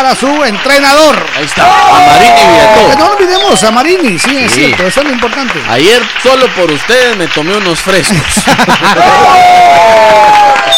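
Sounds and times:
loud crowd applause: 0.0s - 10.7s
speech: 0.0s - 10.7s
sustained whistle-like cheer: 1.9s - 5.2s, 9.1s - 10.7s
laughter: 7.9s - 10.1s.

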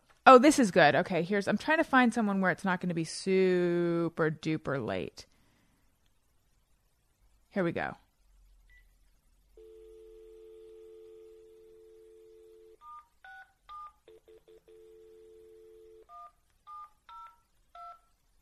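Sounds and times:
speech: 0.2s - 5.3s, 7.6s - 8.0s
steady telephone dial tone: 9.6s - 16.3s.

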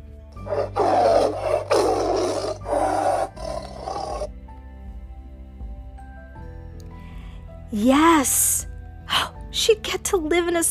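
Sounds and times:
tiger roaring: 0.5s - 4.3s
speech: 7.7s - 8.6s, 9.7s - 10.6s.

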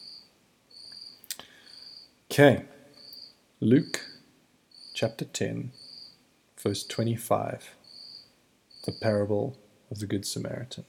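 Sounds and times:
cricket chirping: 0.0s - 2.2s, 2.9s - 5.1s, 5.7s - 6.2s, 7.8s - 9.2s
speech: 2.4s - 2.7s, 3.6s - 4.1s, 5.0s - 5.9s, 6.6s - 7.8s, 8.8s - 10.8s.

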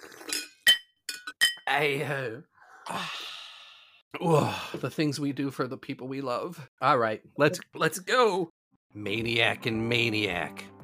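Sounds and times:
glasses clinking together in a toast: 0.2s - 1.7s
speech: 1.7s - 3.3s, 4.1s - 10.8s.

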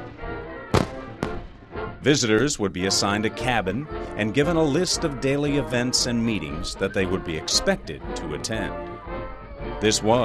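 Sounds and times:
sharp fireworks explosions: 0.7s - 1.6s
speech: 2.0s - 9.0s, 9.8s - 10.2s.

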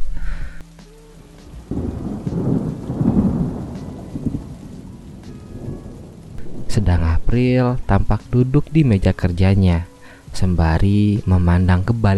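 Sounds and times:
heavy rain: 0.6s - 12.1s
deep thunder rumbling: 1.5s - 9.4s
speech: 7.3s - 12.1s.

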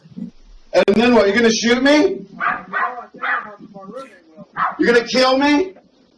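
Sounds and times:
speech: 0.7s - 2.2s, 4.8s - 5.7s
dog barking: 2.4s - 3.6s, 4.5s - 5.0s.

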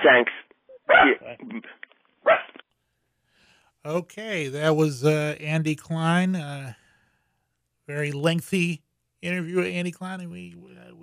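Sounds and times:
speech: 0.0s - 0.4s, 3.8s - 6.8s, 7.9s - 10.7s
dog barking: 0.9s - 1.2s, 2.2s - 2.6s.

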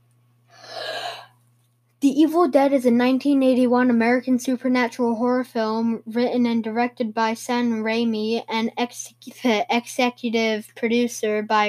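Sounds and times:
steady low electrical hum: 0.0s - 11.6s
deep breath in: 0.5s - 1.4s
speech: 2.0s - 11.6s.

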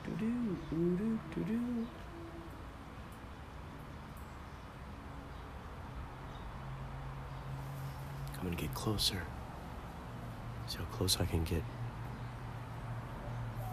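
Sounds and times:
dove cooing: 0.0s - 2.6s, 13.2s - 13.7s
traffic hum outdoors: 0.0s - 13.7s
speech: 0.2s - 2.1s, 8.4s - 9.4s, 10.7s - 11.8s.

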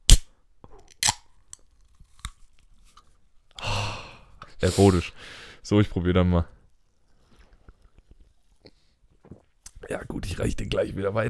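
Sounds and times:
can of apricot energy drink clicks and crackles: 0.0s - 0.3s, 0.9s - 2.7s
speech: 4.6s - 6.6s, 10.0s - 11.2s.

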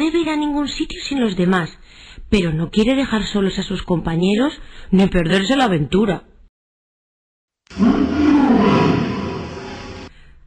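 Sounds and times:
speech: 0.0s - 6.3s, 7.7s - 8.1s
lion roaring: 7.7s - 10.1s.

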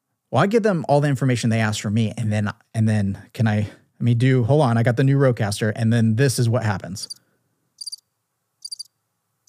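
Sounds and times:
speech: 0.3s - 7.2s
crickets chirping: 7.8s - 8.0s, 8.6s - 9.4s.

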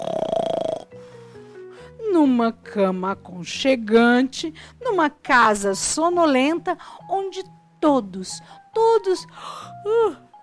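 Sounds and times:
loud rattling snore voiced by a person imitating it: 0.0s - 1.4s
speech: 2.2s - 10.2s.

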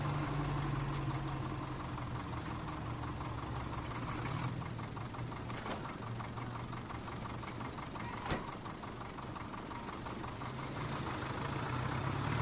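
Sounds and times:
truck engine idling in a World War II setting: 0.0s - 12.3s.

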